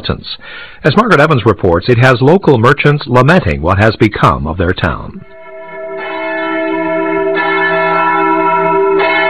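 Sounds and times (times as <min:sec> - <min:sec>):
speech: 0:00.0 - 0:05.4
church bells ringing for evening mass: 0:05.2 - 0:09.2.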